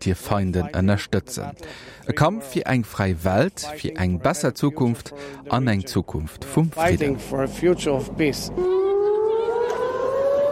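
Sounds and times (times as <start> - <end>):
speech: 0.0 - 8.8
air raid warning siren wailing: 7.2 - 10.5.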